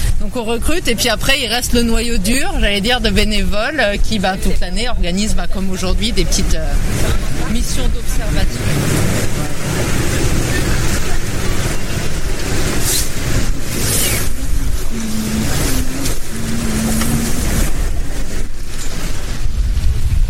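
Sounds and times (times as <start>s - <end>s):
boat engine droning while motoring through a channel: 0.0s - 20.0s
water wash from a boat: 0.0s - 20.2s
wind: 0.0s - 20.2s
speech: 0.4s - 10.0s
low tonal hum: 6.0s - 19.6s.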